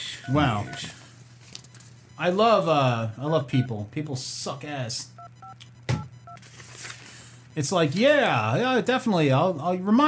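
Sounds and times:
touch-tone telephone dialing beep: 0:00.2 - 0:00.9, 0:03.5 - 0:03.7, 0:05.2 - 0:06.4
speech: 0:00.2 - 0:01.0, 0:02.2 - 0:05.8, 0:07.6 - 0:10.0.

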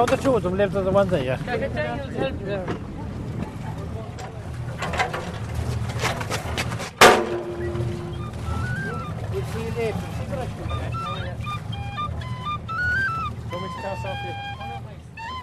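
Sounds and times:
speech: 0:00.0 - 0:02.9, 0:09.4 - 0:11.0, 0:13.5 - 0:14.5
passenger ferry rumbling into a small quay: 0:00.0 - 0:15.4
faint voices murmuring: 0:00.8 - 0:05.2, 0:07.7 - 0:15.4
birds calling: 0:07.3 - 0:15.4.

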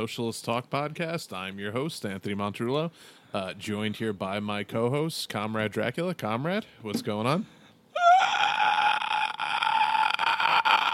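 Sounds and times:
speech: 0:00.0 - 0:07.6
loud strained high-pitched inward scream: 0:08.0 - 0:10.9.

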